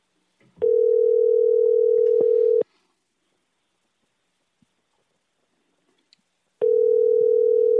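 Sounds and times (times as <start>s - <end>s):
outgoing phone call electronic ringback tone: 0.6s - 2.6s, 6.6s - 7.7s.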